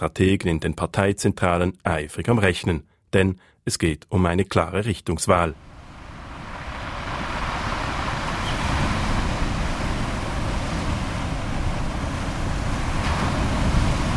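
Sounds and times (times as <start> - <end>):
speech: 0.0 - 5.7
sea surf on the shore at Charlottenlund north of Copenhagen Denmark: 5.6 - 14.1.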